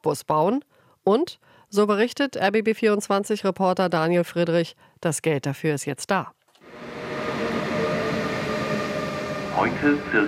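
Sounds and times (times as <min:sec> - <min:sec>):
speech: 0:00.0 - 0:06.9, 0:09.6 - 0:10.2
regional train pulling into a station on a single-track line: 0:06.6 - 0:10.2.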